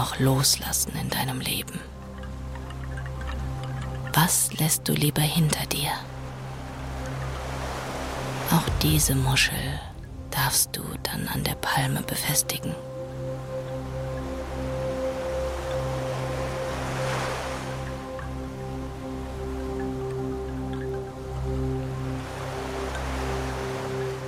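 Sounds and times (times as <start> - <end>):
speech: 0.0 - 2.0, 4.2 - 6.1, 8.5 - 12.9
soft low humming drone of sustained tones: 0.0 - 24.2
ocean waves rushing: 6.0 - 13.5, 14.4 - 24.2.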